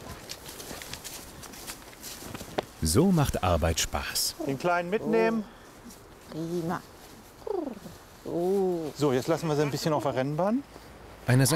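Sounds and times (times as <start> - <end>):
horse hooves clip-clopping as horses are ridden at a walk up a slope: 0.0 - 2.8
speech: 2.8 - 5.6, 6.3 - 6.9, 8.3 - 11.5.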